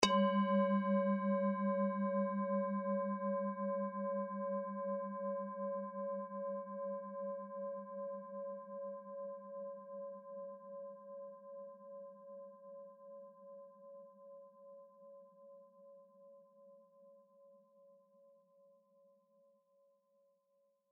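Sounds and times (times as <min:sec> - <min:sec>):
singing bowl: 0:00.0 - 0:16.7.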